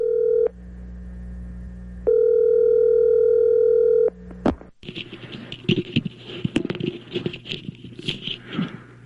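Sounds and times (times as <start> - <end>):
telephone call dialing and ringing tone: 0.0 - 0.5, 2.1 - 4.1
crackly rustling telephone line noise: 4.4 - 9.0.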